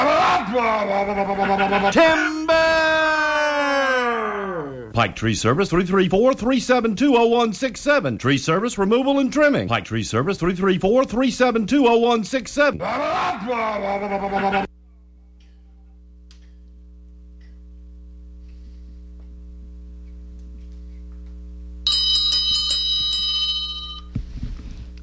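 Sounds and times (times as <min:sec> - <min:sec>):
laughter: 0:00.0 - 0:02.4, 0:12.8 - 0:14.7
steady low electrical hum: 0:00.0 - 0:25.0
speech: 0:00.5 - 0:02.7, 0:05.0 - 0:14.7
bright electronic bell chime time signal: 0:21.9 - 0:24.1.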